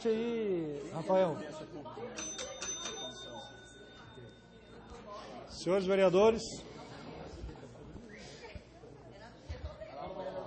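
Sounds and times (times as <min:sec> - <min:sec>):
speech: 0:00.0 - 0:02.4, 0:05.5 - 0:06.7
room full of people murmuring: 0:00.0 - 0:10.4
handheld session bell struck to call a city council session to order: 0:02.0 - 0:05.4.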